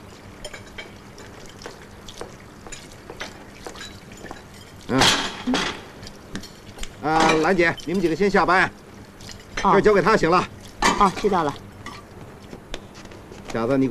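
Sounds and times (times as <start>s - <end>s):
running water in a sink: 0.0s - 13.8s
dishes and cutlery clattering in a sink: 0.4s - 8.1s, 10.8s - 12.1s
speech: 4.9s - 5.8s, 7.0s - 8.8s, 9.6s - 11.6s, 13.5s - 13.8s.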